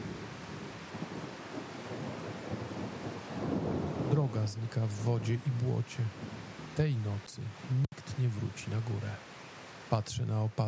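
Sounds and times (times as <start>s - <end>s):
low rumble of thunder: 0.0s - 7.6s
heavy rain downpour over a valley: 0.0s - 10.6s
speech: 4.2s - 9.3s, 9.9s - 10.6s.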